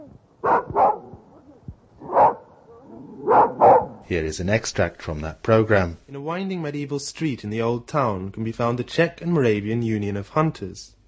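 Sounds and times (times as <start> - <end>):
faint noise: 0.0 - 11.0
fox terrier barking in a city park: 0.4 - 4.0
speech: 4.1 - 11.0.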